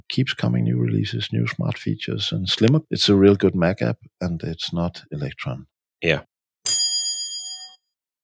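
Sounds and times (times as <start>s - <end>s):
speech: 0.1s - 6.3s
desk bell ding: 6.6s - 7.9s.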